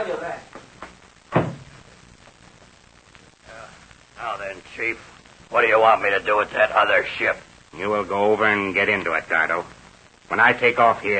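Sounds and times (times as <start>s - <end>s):
speech: 0.0s - 0.6s, 4.2s - 11.1s
plane rear compartment door shutting with a thud: 1.3s - 1.8s.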